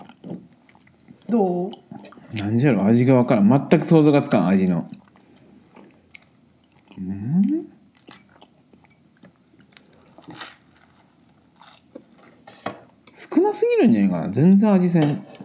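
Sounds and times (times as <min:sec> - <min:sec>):
person chewing food: 0:00.0 - 0:02.6, 0:04.9 - 0:13.1
speech: 0:01.3 - 0:05.0, 0:13.8 - 0:15.3.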